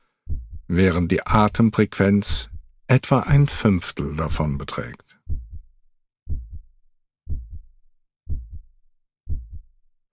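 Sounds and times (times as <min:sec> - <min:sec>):
heartbeat thumping with low double thuds: 0:00.2 - 0:01.7, 0:02.3 - 0:03.6, 0:05.2 - 0:09.8
speech: 0:00.7 - 0:05.0.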